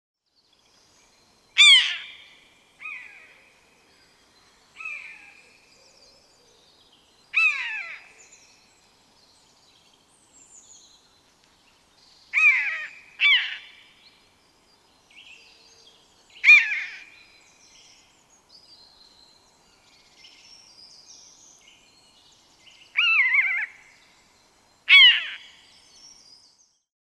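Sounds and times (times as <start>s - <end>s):
common buzzard calling: 1.6s - 2.2s, 7.4s - 8.1s, 12.4s - 13.8s, 16.4s - 17.1s, 23.0s - 23.8s, 24.9s - 25.5s.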